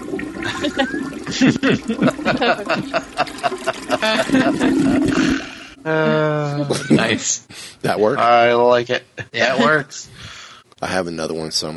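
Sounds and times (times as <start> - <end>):
toilet flush played from a soundboard: 0.0 - 5.8
laughter: 0.4 - 5.4, 6.0 - 7.4, 9.2 - 9.8
speech: 0.6 - 11.7.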